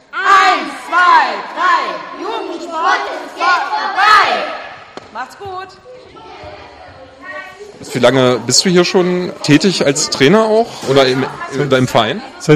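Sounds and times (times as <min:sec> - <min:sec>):
children's sports class in a gym shouting a team battle cry together: 0:00.1 - 0:04.9, 0:06.0 - 0:07.4
speech: 0:05.2 - 0:06.4, 0:07.8 - 0:12.5.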